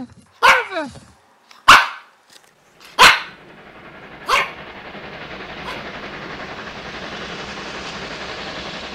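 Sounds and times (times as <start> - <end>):
dog barking: 0.4 - 0.8, 1.6 - 2.1, 3.0 - 3.4, 4.3 - 4.6
speech: 0.8 - 1.1
steady rushing rumble: 2.5 - 8.9.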